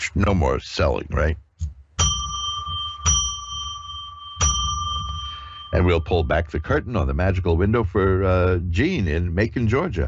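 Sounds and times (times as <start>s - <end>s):
speech: 0.1s - 1.4s, 5.7s - 10.0s
bright bell struck: 2.0s - 7.8s.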